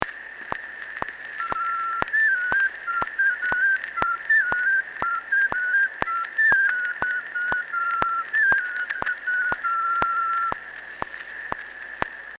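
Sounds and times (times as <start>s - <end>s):
folk whistle pipe tune from Kuusalu: 1.4s - 10.6s.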